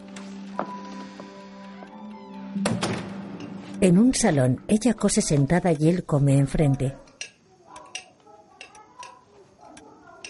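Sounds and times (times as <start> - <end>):
steady low tone: 0.0 - 10.2
bedroom door being closed: 2.6 - 3.6
speech: 3.8 - 7.0.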